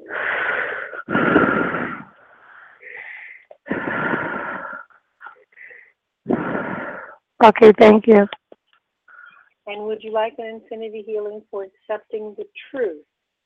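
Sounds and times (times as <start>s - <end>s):
deep breathing during a guided healing session: 0.0s - 7.3s, 9.1s - 9.6s
speech: 7.4s - 8.4s, 9.7s - 13.1s.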